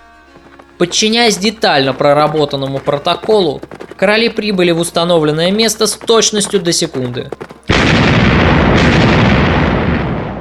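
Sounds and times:
speech: 0.8s - 8.2s
cannon fired at the meeting of two kings: 7.7s - 10.3s.

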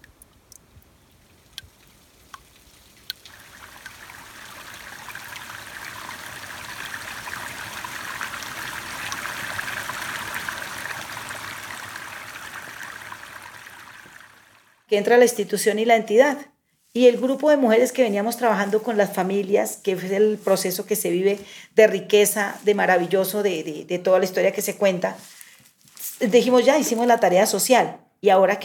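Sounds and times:
groundwater surfacing and flowing from aquifers: 0.0s - 14.9s
speech: 14.9s - 25.4s, 26.2s - 28.6s.

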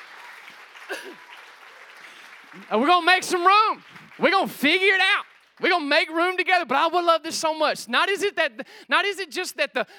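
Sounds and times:
audience applauding: 0.0s - 6.1s
speech: 0.9s - 1.3s, 2.5s - 9.9s.

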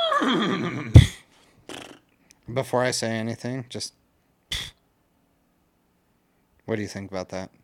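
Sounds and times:
person imitating a horse whinny: 0.0s - 2.0s
speech: 0.2s - 1.1s, 2.5s - 4.0s, 6.7s - 7.6s.

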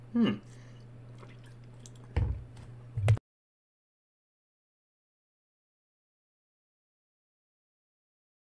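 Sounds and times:
steady low electrical hum: 0.0s - 3.2s
wet gulping swallow: 1.1s - 2.1s.

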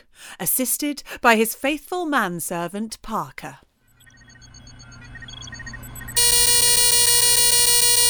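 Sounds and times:
speech: 0.4s - 3.7s
inkjet printer alert buzzer: 6.2s - 8.0s
sparse tones: 6.2s - 8.0s.

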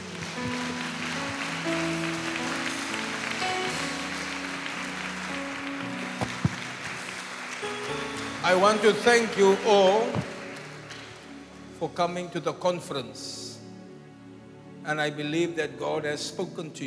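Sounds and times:
sustained musical tones: 0.0s - 11.8s
congregation clapping during worship at a church conference: 0.0s - 12.1s
speech: 8.5s - 10.2s, 11.8s - 13.4s, 14.9s - 16.8s.

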